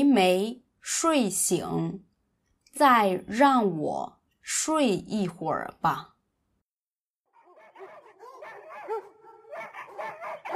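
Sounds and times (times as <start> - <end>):
speech: 0.0 - 2.1, 2.8 - 6.1
dog barking excitedly: 7.3 - 10.5.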